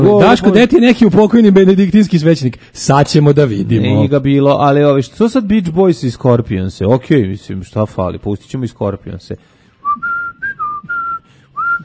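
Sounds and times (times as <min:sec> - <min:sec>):
speech: 0:00.0 - 0:10.2
clear loud human whistling: 0:09.8 - 0:11.8.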